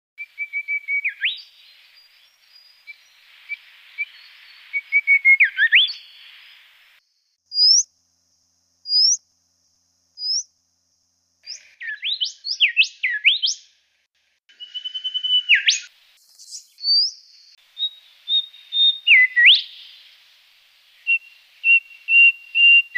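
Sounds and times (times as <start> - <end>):
golden whistler: 0.2 - 6.8, 7.5 - 7.9, 8.9 - 9.2, 10.2 - 10.5, 11.4 - 13.7, 14.5 - 20.3, 20.9 - 22.9.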